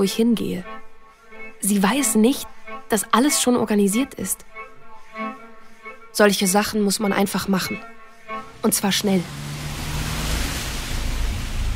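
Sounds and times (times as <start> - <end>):
speech: 0.0 - 0.8, 1.6 - 5.4, 6.1 - 9.5
low rumbling wind gusts: 8.4 - 11.7
rain in a downpour: 8.4 - 11.7.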